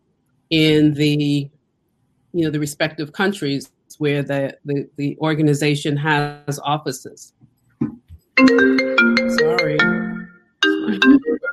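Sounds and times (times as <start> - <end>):
speech: 0.5 - 1.6, 2.3 - 10.1, 10.9 - 11.5
phone ringtone with bright electronic melody: 8.4 - 11.5.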